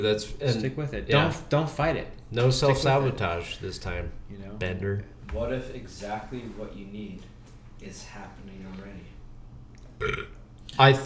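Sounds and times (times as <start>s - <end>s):
speech: 0.0s - 9.1s, 10.0s - 11.0s
person burping into the microphone: 10.0s - 10.4s
throaty gulp: 10.0s - 10.4s.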